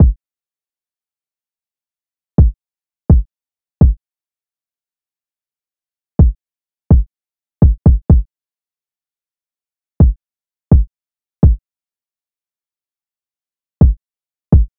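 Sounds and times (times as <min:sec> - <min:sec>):
kick drum loop at 126 BPM: 0:02.4 - 0:04.0, 0:06.2 - 0:08.2, 0:10.0 - 0:11.6, 0:13.8 - 0:14.7.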